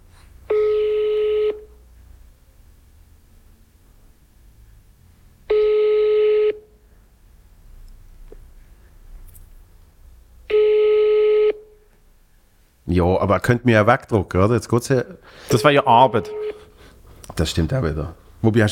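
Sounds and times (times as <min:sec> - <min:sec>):
electronic telephone ringing tones: 0:00.5 - 0:01.8, 0:05.5 - 0:06.6, 0:10.5 - 0:11.6, 0:15.5 - 0:16.7
speech: 0:13.0 - 0:16.6, 0:17.3 - 0:18.7.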